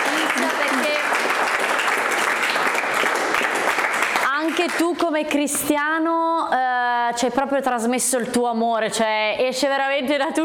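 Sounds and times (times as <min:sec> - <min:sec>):
many hands clapping at a dance event: 0:00.0 - 0:05.7
speech: 0:04.7 - 0:10.4.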